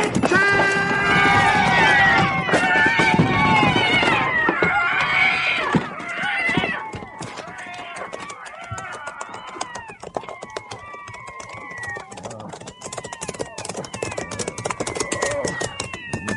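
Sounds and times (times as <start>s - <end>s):
crowd of cats meowing: 0.0s - 16.3s
steady patter of sharp clicks and taps: 6.8s - 16.3s.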